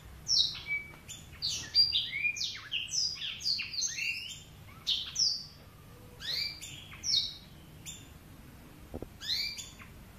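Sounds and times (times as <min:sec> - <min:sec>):
Oriental magpie-robin whistling song: 0:00.3 - 0:08.1, 0:09.2 - 0:10.1.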